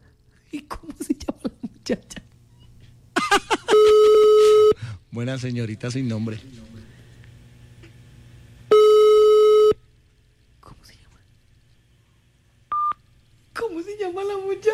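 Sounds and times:
laughter: 0.7s - 2.3s, 3.1s - 4.6s
speech: 1.9s - 2.2s, 5.2s - 6.6s
telephone busy tone after a call hangs up: 8.7s - 9.8s, 12.7s - 13.0s.

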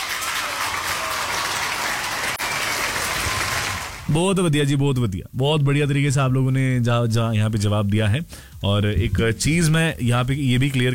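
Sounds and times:
applause for correct answers: 0.0s - 4.1s
speech: 4.1s - 10.9s.

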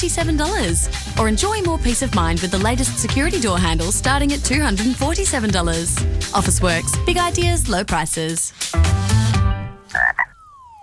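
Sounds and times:
speech: 0.0s - 9.0s
frog croaking: 9.8s - 10.8s
thin whistle-like tone sliding downward in pitch: 10.2s - 10.8s.

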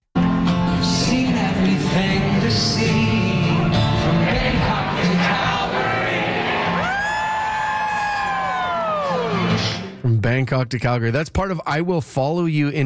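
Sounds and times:
large concert crowd singing along in unison: 1.0s - 6.9s
crowd cheering and shouting: 4.0s - 9.9s
speech: 10.3s - 12.8s.

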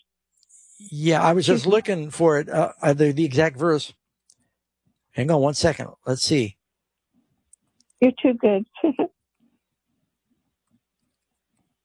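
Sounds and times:
speech: 0.8s - 4.0s, 5.2s - 6.6s, 8.0s - 9.2s
quiet keyboard typing: 10.6s - 11.7s.

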